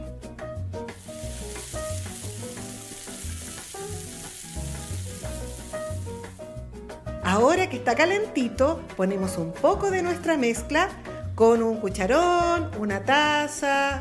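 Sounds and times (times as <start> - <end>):
hot frying pan with a little oil sizzling: 0.9 - 6.6
speech: 7.3 - 14.0.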